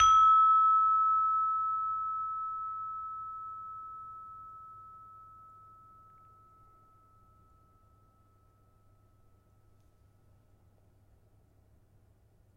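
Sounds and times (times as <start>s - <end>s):
peking gamelan metallophone: 0.0s - 6.2s.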